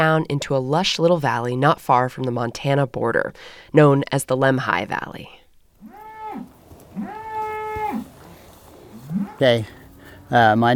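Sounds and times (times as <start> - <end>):
speech: 0.0 - 5.4, 9.4 - 10.7
faint outdoor background: 0.0 - 10.7
cow mooing in a field: 5.8 - 10.4.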